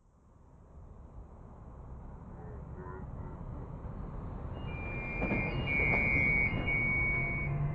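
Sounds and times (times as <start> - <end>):
big city beep: 4.6 - 7.6.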